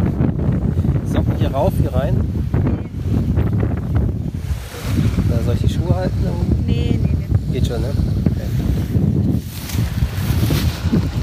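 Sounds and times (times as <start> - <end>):
strong wind buffeting the microphone at the seashore: 0.0 - 11.2
surf washing at the seashore: 0.0 - 11.2
speech: 1.5 - 2.4, 6.0 - 9.1.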